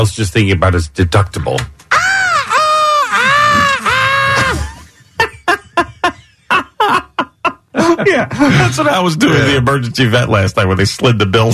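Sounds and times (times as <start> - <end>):
speech: 0.0 - 1.7, 8.1 - 11.5
person imitating a dog's pained scream: 1.9 - 4.7
person laughing: 1.9 - 8.8.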